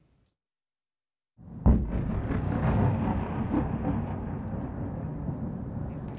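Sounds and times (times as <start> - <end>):
explosion blast during an air raid: 1.4 - 6.1
rolling rumbling and crackling during an air raid: 1.6 - 6.1.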